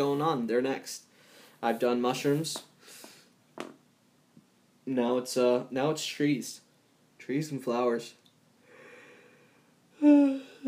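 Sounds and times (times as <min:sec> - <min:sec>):
speech: 0:00.0 - 0:02.7, 0:03.6 - 0:03.8, 0:04.9 - 0:06.6, 0:07.2 - 0:08.2, 0:10.0 - 0:10.6
breathy voiced exhalation with a low hum: 0:10.0 - 0:10.6
brief vocal sound: 0:10.0 - 0:10.6.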